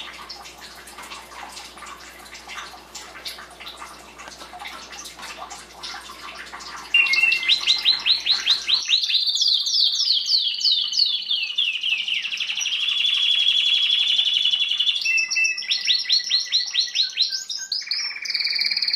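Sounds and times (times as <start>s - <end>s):
canary song: 6.9s - 18.9s.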